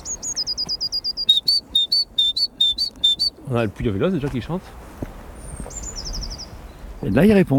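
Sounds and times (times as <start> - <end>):
person whistling an imitation of a blue tit call near Cailleux-sur-Mer Somme: 0.0 - 3.4
speech: 3.5 - 5.1, 7.0 - 7.5.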